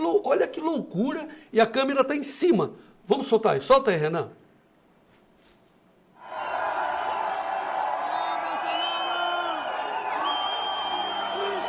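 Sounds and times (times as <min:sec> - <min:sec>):
speech: 0:00.2 - 0:04.4
large crowd shouting and cheering at a politician's arrival at a TV station: 0:06.2 - 0:11.6.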